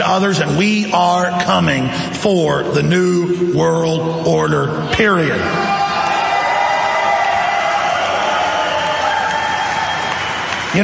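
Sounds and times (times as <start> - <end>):
speech: 0.1 - 5.8
whoops and shouts from crowd: 5.5 - 10.6
large indoor auditorium crowd cheering and roaring: 5.5 - 10.8.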